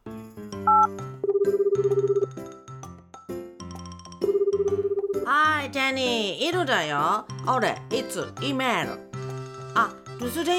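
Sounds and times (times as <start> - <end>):
phone call ringing tone, bright electronic melody of chiming notes: 0.7 - 2.4, 4.1 - 5.2
speech: 5.4 - 9.0, 9.8 - 10.5.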